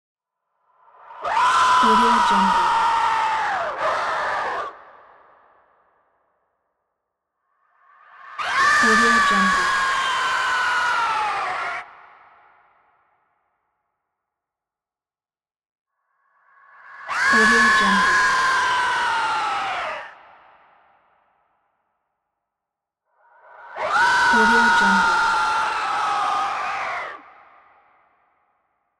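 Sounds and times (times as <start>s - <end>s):
demonic scream: 1.2s - 4.8s, 8.2s - 12.0s, 17.0s - 20.2s, 23.7s - 27.6s.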